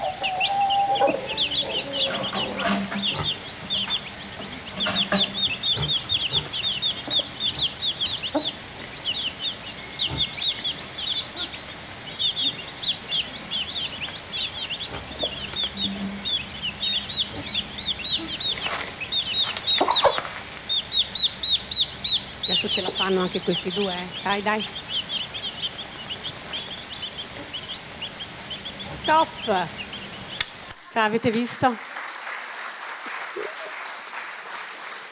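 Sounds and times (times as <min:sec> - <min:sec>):
chicks peeping: 0:00.0 - 0:31.8
speech: 0:23.0 - 0:24.8, 0:29.1 - 0:29.8, 0:31.0 - 0:31.9.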